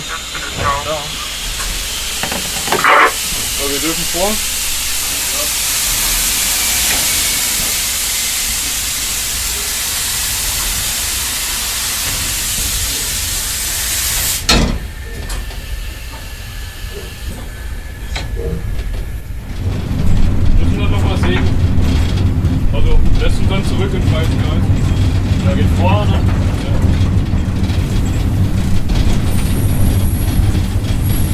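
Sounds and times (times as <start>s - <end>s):
steam locomotive letting out a loud steady hiss of steam: 0.0s - 19.6s
steam locomotive engine rumbling and clanking as it rolls: 0.0s - 31.3s
speech: 3.8s - 4.6s.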